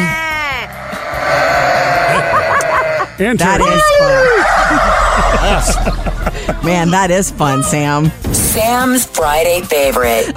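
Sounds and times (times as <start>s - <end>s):
sheep bleating: 0.0s - 4.1s
noisy rumbling noise: 0.3s - 9.3s
laughter: 1.4s - 6.9s
speech: 3.2s - 10.3s.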